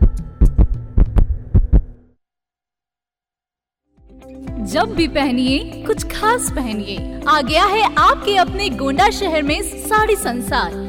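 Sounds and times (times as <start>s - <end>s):
heavy lub-dub heartbeats thumping in a local FM radio jingle: 0.0s - 2.0s
speech: 4.7s - 10.8s.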